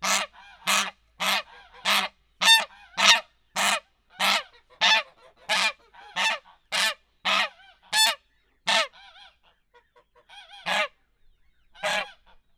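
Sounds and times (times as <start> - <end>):
domestic goose honking in a farmyard: 0.0 - 9.3, 11.8 - 12.4.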